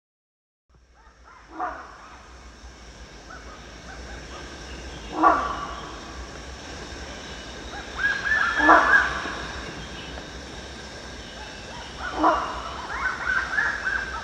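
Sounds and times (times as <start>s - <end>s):
constant droning forest chorus at Danum: 0.7s - 14.2s
Rhinoceros hornbill calling with harsh hoarse honks at Danum: 1.5s - 2.3s, 3.3s - 10.3s, 11.2s - 14.2s.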